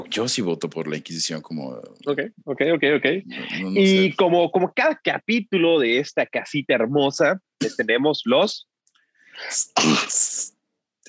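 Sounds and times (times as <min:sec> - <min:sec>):
speech: 0:00.0 - 0:08.7, 0:09.4 - 0:10.5
loud sneeze: 0:09.8 - 0:10.2.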